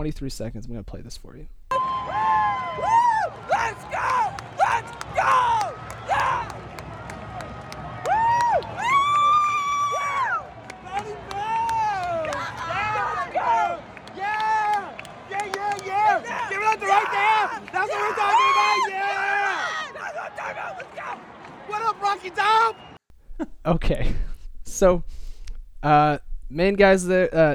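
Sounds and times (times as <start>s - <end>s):
speech: 0.0s - 2.2s, 2.8s - 6.7s, 22.0s - 22.8s, 23.6s - 24.2s, 24.8s - 25.2s, 25.8s - 27.5s
loud voices shouting and whooping: 1.7s - 6.6s, 7.9s - 22.8s
dense stadium crowd yelling and cheering after a win: 1.7s - 23.0s.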